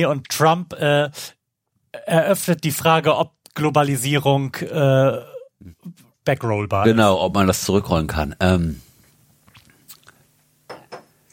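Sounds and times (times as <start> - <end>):
speech: 0.0 - 1.4, 2.0 - 8.9
crunchy biting and chewing of mealy food: 9.4 - 10.2.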